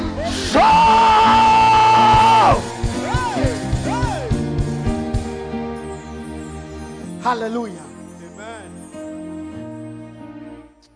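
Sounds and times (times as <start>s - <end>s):
long loud sustained cry: 0.2s - 2.7s
church audience shouting together: 0.5s - 4.6s
dense crowd noise: 0.6s - 6.0s
speech: 7.3s - 7.9s.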